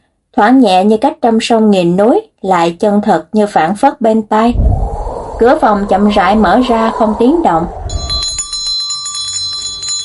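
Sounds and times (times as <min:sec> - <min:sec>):
speech: 0:00.4 - 0:04.8, 0:05.4 - 0:07.8
old bell ringing violently in an inn: 0:07.9 - 0:10.0.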